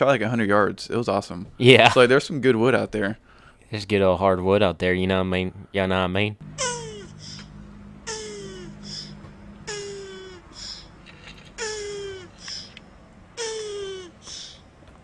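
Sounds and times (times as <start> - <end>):
speech: 0.0 - 6.7
low steady hum: 5.1 - 15.0
turtles mating with groaning calls: 6.6 - 14.7.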